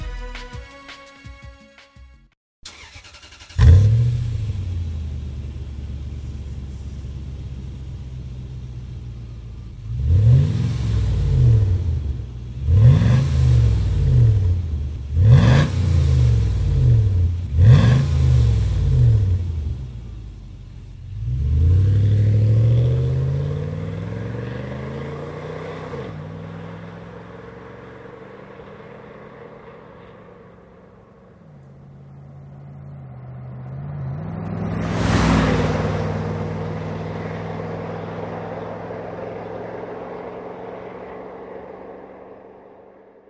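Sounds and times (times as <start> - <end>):
short musical intro: 0.0 - 2.3
Toyota Land Cruiser Cygnus SUV engine with aftermarket exhaust revving: 2.7 - 43.2.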